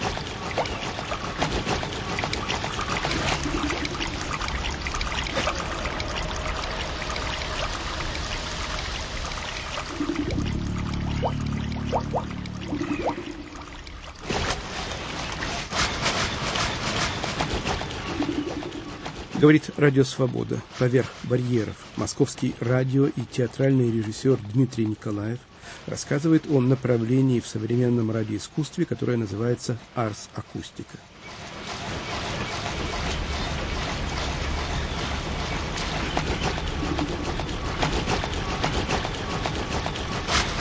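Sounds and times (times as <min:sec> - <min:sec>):
Baltic surf and churning water: 0:00.0 - 0:40.5
deep rumbling swell of surf: 0:03.4 - 0:14.2
speech: 0:19.4 - 0:31.4.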